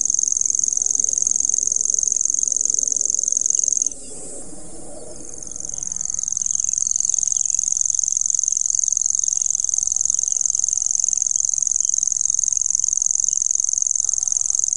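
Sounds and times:
Common grasshopper warbler reeling trill: 0.0 - 14.7
low background rumble: 2.8 - 8.0.

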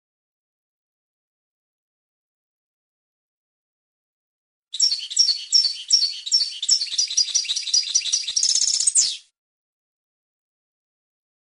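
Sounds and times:
European goldfinch twittering song: 4.8 - 9.3.

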